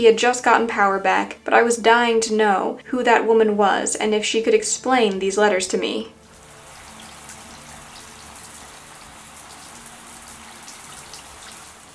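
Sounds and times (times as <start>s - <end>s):
speech: 0.0s - 6.2s
shower water running in a hissing spray: 6.2s - 11.9s.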